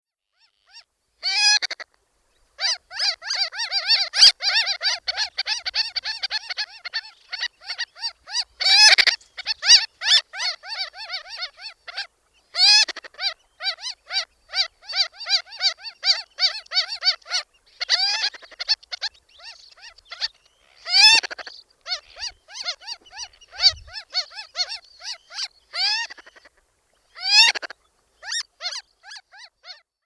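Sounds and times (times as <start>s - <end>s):
Ross's gull: 0.4s - 1.9s, 2.6s - 26.6s, 27.2s - 29.9s.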